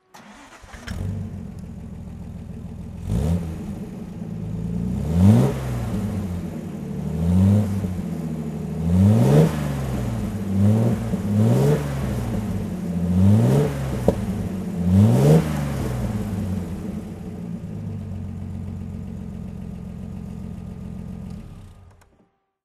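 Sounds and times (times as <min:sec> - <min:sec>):
Healey 3000 Mk2 car engine throttle: 0:00.1 - 0:17.8.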